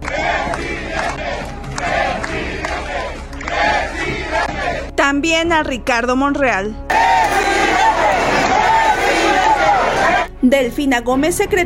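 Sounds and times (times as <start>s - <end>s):
large crowd chanting in rhythmic unison: 0.0s - 4.9s, 6.9s - 10.3s
speech: 5.1s - 6.8s, 10.4s - 11.6s.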